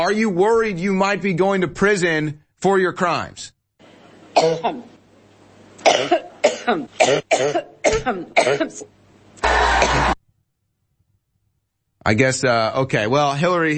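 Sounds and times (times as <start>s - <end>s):
speech: 0.0s - 3.6s, 4.4s - 4.9s, 5.8s - 9.0s, 12.0s - 13.7s
fit of harsh rasping coughing: 4.4s - 4.8s, 5.8s - 8.9s, 9.5s - 10.2s.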